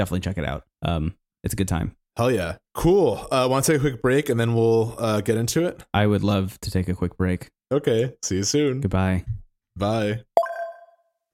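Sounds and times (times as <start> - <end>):
speech: 0.0 - 10.3
mobile phone ringtone chime: 10.4 - 11.0.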